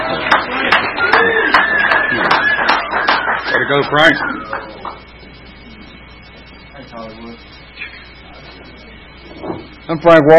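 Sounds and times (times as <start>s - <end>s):
audience applause: 0.0s - 4.9s
speech: 3.7s - 4.6s, 9.9s - 10.3s.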